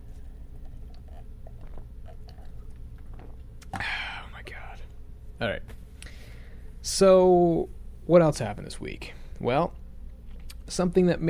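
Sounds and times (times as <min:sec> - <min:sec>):
mouth sipping and slurping a drink: 0:00.5 - 0:03.0
speech: 0:05.4 - 0:05.8, 0:06.9 - 0:09.8, 0:10.7 - 0:11.2.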